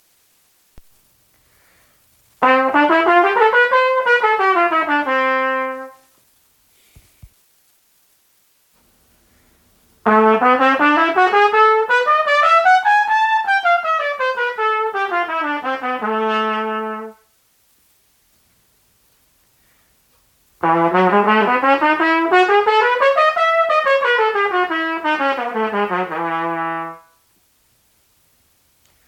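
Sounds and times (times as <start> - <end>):
trumpet playing audition scales: 2.4 - 6.1, 10.0 - 17.3, 20.6 - 27.3.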